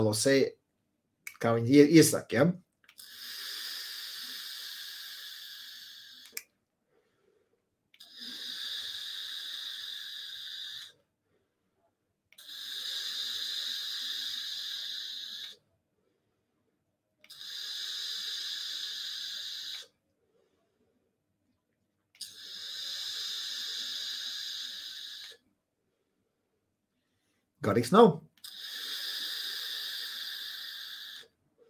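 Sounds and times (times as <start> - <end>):
speech: 0.0 - 0.6, 1.4 - 3.2, 27.7 - 28.3
electronic vape coil hissing on draws at 40 watts: 3.0 - 6.4, 8.0 - 11.0, 12.4 - 15.6, 17.3 - 19.9, 22.2 - 25.4, 28.4 - 31.3.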